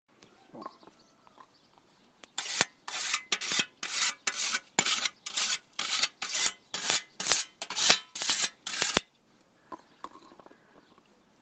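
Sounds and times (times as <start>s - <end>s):
scythe being sharpened: 2.4s - 9.1s.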